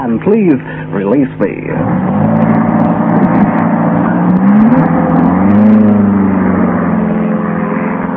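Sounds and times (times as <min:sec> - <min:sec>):
speech: 0:00.0 - 0:02.5
car engine revving and accelerating: 0:00.0 - 0:08.1.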